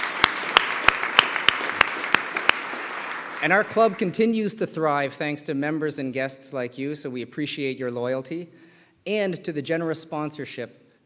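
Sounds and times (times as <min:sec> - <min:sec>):
crowd applause for staff at a club's final event of the season: 0:00.0 - 0:04.1
steady rhythmic clapping: 0:00.0 - 0:04.3
speech: 0:03.4 - 0:10.8.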